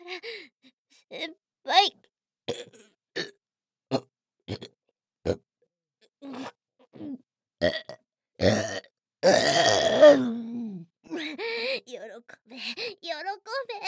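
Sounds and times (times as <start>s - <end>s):
speech: 1.1s - 2.0s
short throaty burps and a rumbling belch: 2.5s - 3.3s, 3.9s - 4.7s, 6.3s - 10.8s.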